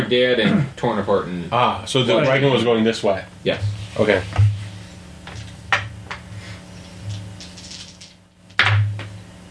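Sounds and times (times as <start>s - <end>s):
speech: 0.0s - 4.5s
low steady hum: 0.0s - 9.4s
dice rattling with sharp clicking: 6.8s - 8.2s.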